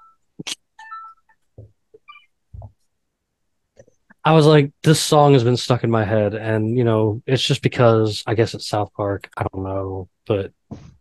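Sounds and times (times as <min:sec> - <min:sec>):
computer ringing with incoming call: 0:00.8 - 0:01.3
speech: 0:04.2 - 0:10.9
dull thumps: 0:10.6 - 0:10.9.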